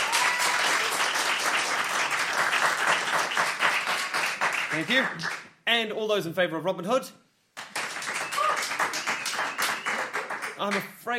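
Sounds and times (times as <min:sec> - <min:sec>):
audience applause: 0:00.0 - 0:05.4, 0:07.6 - 0:10.8
speech: 0:04.8 - 0:07.2, 0:10.6 - 0:11.1.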